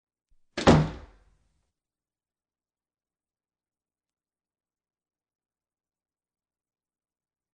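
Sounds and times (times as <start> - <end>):
door closing: 0.6 - 1.2.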